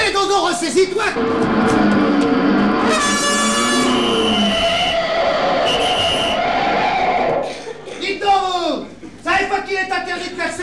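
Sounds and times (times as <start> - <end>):
speech: 0.1 - 1.8
busy warbling sounds: 1.1 - 7.5
car horn honking: 1.2 - 7.4
laughter: 4.4 - 10.5.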